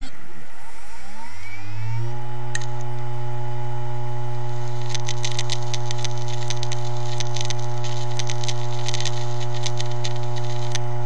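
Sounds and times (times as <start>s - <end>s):
dying Seagate drive heads spinning down: 0.2s - 11.0s.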